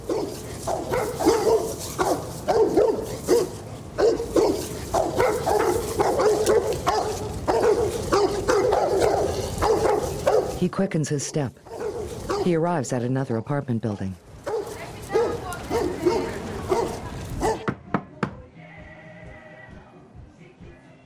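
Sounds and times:
two dogs barking and yipping: 0.0s - 10.6s, 11.6s - 12.6s, 14.4s - 17.7s
speech: 10.8s - 11.7s, 12.4s - 14.3s.

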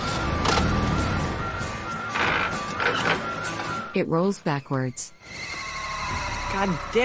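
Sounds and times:
car engine struggling to start with sputtering cranking: 0.0s - 3.9s
speech: 3.9s - 5.5s, 6.5s - 7.0s.

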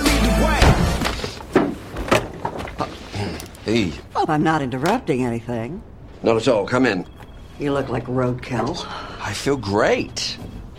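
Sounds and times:
door slamming shut: 0.5s - 2.3s
speech: 3.7s - 10.5s.

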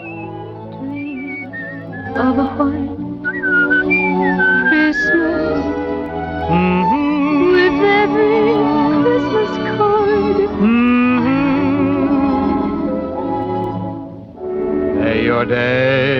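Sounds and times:
person whistling a wavering melody: 0.0s - 5.8s
steady piano chords: 0.0s - 16.1s.

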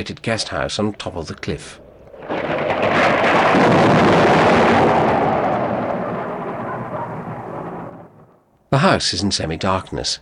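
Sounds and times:
speech: 0.0s - 2.5s, 8.7s - 10.1s
storm-driven waves crashing onto rocks below a cliff: 1.7s - 8.0s.

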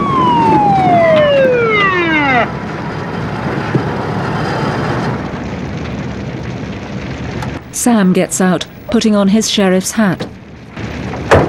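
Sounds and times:
police car siren wailing: 0.0s - 3.0s
low rumble: 0.0s - 11.4s
speech: 7.8s - 10.3s.

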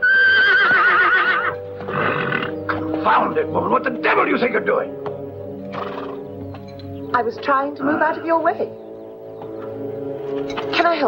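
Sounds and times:
horse rearing and neighing as it throws its rider: 0.0s - 2.8s, 5.7s - 6.2s
speech: 3.1s - 5.1s, 7.1s - 8.8s, 10.8s - 11.0s.

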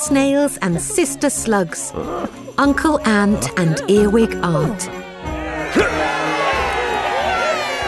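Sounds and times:
speech: 0.0s - 5.1s
large crowd cheering and whooping: 4.9s - 7.8s.

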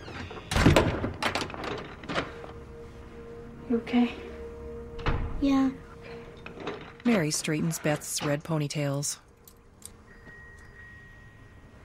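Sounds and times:
door slamming shut: 0.1s - 2.3s, 5.0s - 5.4s
speech: 3.7s - 4.3s, 5.4s - 5.8s, 7.1s - 9.2s.

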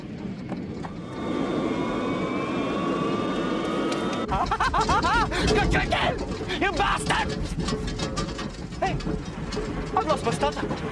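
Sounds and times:
jet airplane engines roaring with a high whine: 0.0s - 4.8s
laughter: 4.2s - 5.7s
speech: 4.3s - 10.9s.

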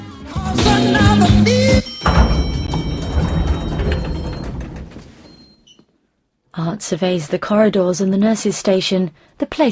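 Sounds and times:
heavy thunk of elevator doors: 0.7s - 5.8s
elevator machinery whirring and clanking with tonal hums: 2.0s - 5.8s
speech: 6.8s - 9.7s.

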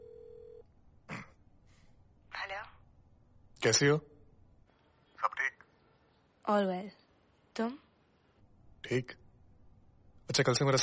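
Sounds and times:
steady telephone tone: 0.0s - 0.6s
speech: 3.6s - 4.1s, 6.5s - 7.0s, 7.6s - 7.8s, 8.8s - 9.2s, 10.3s - 10.8s.

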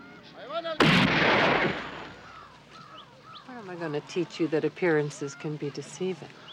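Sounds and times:
speech: 0.3s - 1.8s, 3.6s - 6.4s
rifle shot fired at a snake: 0.8s - 2.4s.

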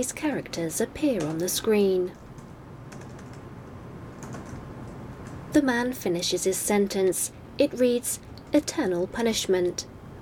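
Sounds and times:
speech: 0.0s - 2.2s, 5.5s - 9.9s
steady hiss: 0.0s - 10.2s
typing on a laptop computer keyboard: 2.3s - 3.5s, 4.1s - 5.4s.

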